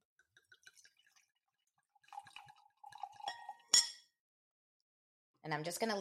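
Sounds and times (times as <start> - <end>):
faint drips: 0.2 - 3.6
wine pouring into a glass: 0.2 - 3.9
bright clink of glass: 3.2 - 4.1
speech: 5.5 - 5.9.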